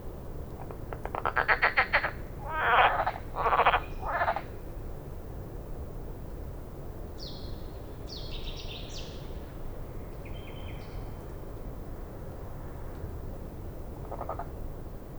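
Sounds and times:
common frog croaking in France: 0.6 - 4.6, 14.0 - 14.6.

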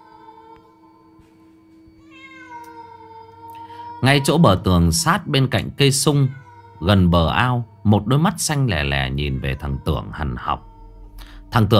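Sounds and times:
stray cat meowing at midnight in a dark garden: 2.0 - 4.8, 5.6 - 7.8, 8.6 - 11.7
speech: 4.0 - 10.7, 11.5 - 11.7.

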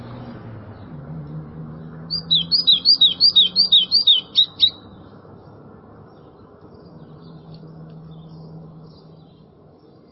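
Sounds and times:
white-throated seedeater song: 2.1 - 4.8.

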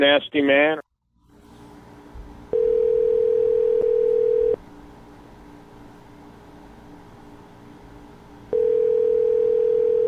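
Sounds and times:
telephone ringback tone on an unanswered call: 2.5 - 4.6, 8.5 - 10.0.

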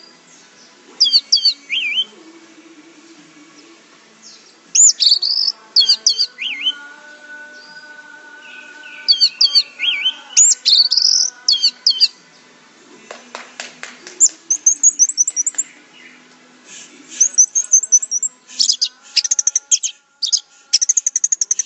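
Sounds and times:
Orange-headed thrush song: 0.0 - 2.2, 4.2 - 6.9, 8.4 - 12.2, 14.1 - 21.6.

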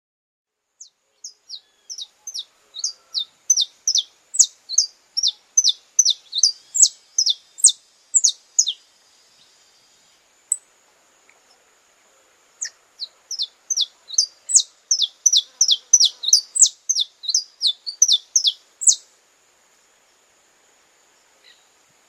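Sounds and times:
Belgian canary song: 0.8 - 10.7, 12.5 - 19.2.

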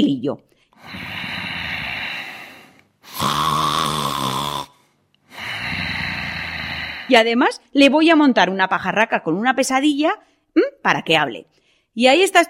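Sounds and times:
speech: 0.0 - 1.3, 7.1 - 12.4
exaggerated snoring in a comic radio sketch: 0.8 - 7.2
hissing breath: 0.8 - 7.2.

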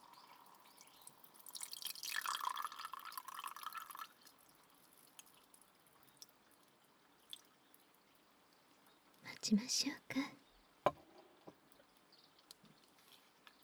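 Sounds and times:
hot water being poured for tea: 0.0 - 5.5
water dripping: 0.0 - 8.6
speech: 9.5 - 10.4.

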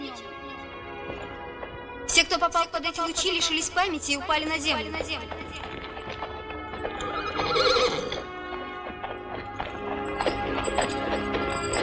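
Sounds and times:
hooves clopping: 0.6 - 11.8
speech: 2.2 - 5.9
horses neighing as riders dismount: 6.9 - 8.3.

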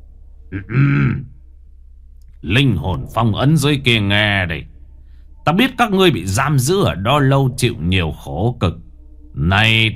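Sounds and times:
speech: 0.5 - 1.3, 2.4 - 4.7, 5.5 - 8.8, 9.4 - 9.9
man clearing throat during a ritual: 0.6 - 1.3.

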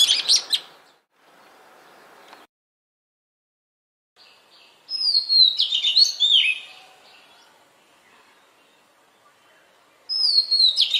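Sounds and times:
Oriental magpie-robin song phrase of whistle and warbled notes: 4.4 - 10.9.

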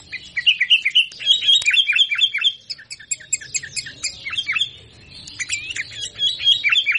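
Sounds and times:
sooty-headed bulbul chattering in sharp downslurred chirps: 0.0 - 6.9.

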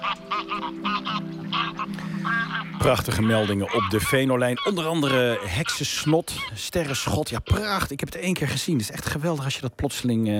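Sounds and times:
geese flying over in fog honking: 0.0 - 7.8
speech: 0.6 - 10.3.

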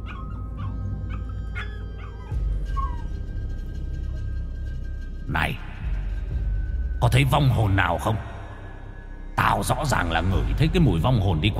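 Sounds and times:
dogs whimpering and yelping along a village road: 0.0 - 3.7
low rumbling background: 0.0 - 11.5
speech: 5.3 - 5.6, 7.0 - 8.3, 9.6 - 11.5.

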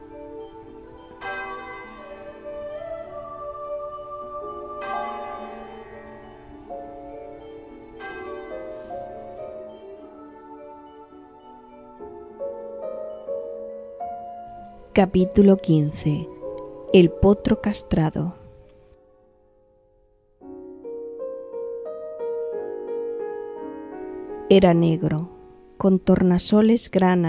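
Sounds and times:
sweet-toned bell ringing: 0.0 - 3.2, 4.6 - 10.0
speech: 15.0 - 16.3, 16.9 - 18.4, 24.5 - 27.2.

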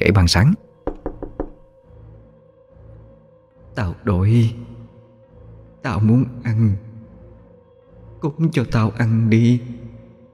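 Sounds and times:
speech: 0.0 - 0.7, 3.8 - 4.7, 5.8 - 6.9, 8.2 - 9.8
sharp knocks on a door: 0.8 - 1.7.

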